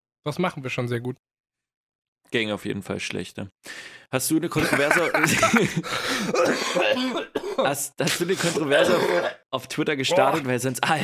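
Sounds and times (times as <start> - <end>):
speech: 0.2 - 1.3, 2.2 - 11.0
laughter: 4.5 - 6.4
harsh throaty coughing fit: 4.6 - 9.4.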